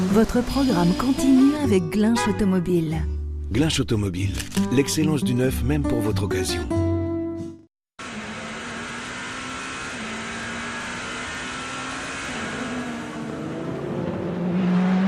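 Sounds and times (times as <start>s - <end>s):
speech: 0.1s - 6.8s
race car engines roaring at the 24 Hours of Le Mans endurance race: 8.0s - 15.0s.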